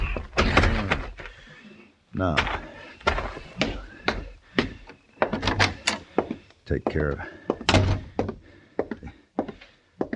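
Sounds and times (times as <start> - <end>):
back door being worked open with sharp wooden thumps and rattles: 0.0 - 1.2, 2.4 - 6.0, 7.6 - 8.3
speech: 2.2 - 2.6, 6.7 - 7.9.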